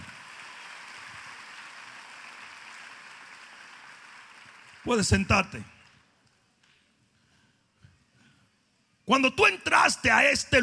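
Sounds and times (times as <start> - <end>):
audience applauding: 0.0 - 6.0
speech: 4.8 - 5.7, 9.1 - 10.6.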